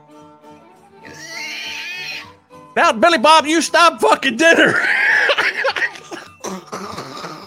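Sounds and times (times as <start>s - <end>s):
pig squealing: 1.0s - 2.4s, 4.7s - 5.8s
speech: 2.8s - 4.9s
laughter: 4.5s - 6.2s.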